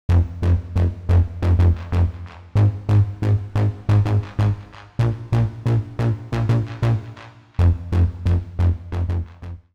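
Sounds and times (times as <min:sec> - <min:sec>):
step modulator synth sequence: 0:00.1 - 0:09.4.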